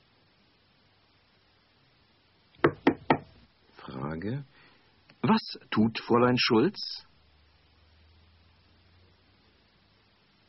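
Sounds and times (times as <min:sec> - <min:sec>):
woman knocking on a door: 0:02.6 - 0:03.4
speech: 0:04.2 - 0:07.1.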